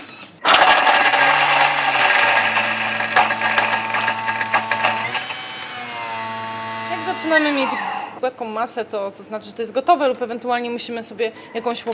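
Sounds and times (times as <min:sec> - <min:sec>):
blender blending chickpeas: 0:00.4 - 0:08.2
speech: 0:07.2 - 0:11.9.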